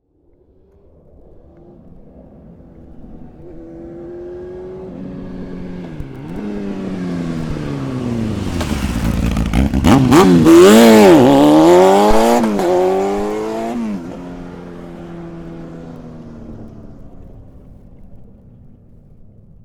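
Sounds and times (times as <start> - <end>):
Honda Hornet race motorcycle approaching slowly and revving away: 0.2 - 19.6.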